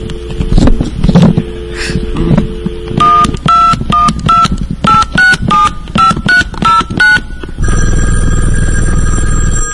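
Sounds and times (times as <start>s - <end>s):
noise: 0.0s - 9.7s
DTMF touch-tone dialing beeps on a phone line: 2.8s - 7.4s
steady telephone dial tone: 7.0s - 9.7s.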